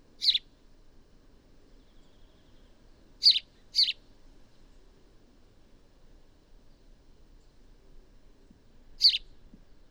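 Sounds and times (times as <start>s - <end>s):
house sparrow Passer domesticus chirping: 0.2s - 0.4s, 3.2s - 4.0s.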